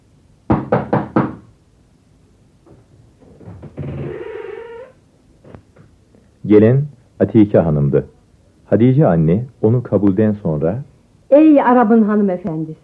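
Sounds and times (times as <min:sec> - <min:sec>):
firm knocks on a house door: 0:00.5 - 0:01.5
speech: 0:06.5 - 0:08.1, 0:08.7 - 0:12.8.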